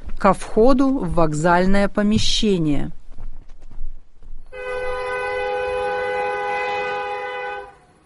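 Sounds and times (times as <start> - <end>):
train rumbling on rails: 0.0 - 8.0
speech: 0.2 - 3.0
train horn blast as train pulls away from a station platform: 4.5 - 8.0.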